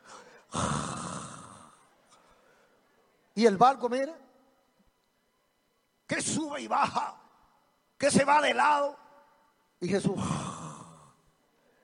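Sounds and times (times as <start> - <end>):
voice imitating a long raspy snore: 0.5 - 1.8, 10.2 - 11.2
speech: 3.4 - 4.2, 6.2 - 7.2, 8.0 - 9.0, 9.8 - 10.5.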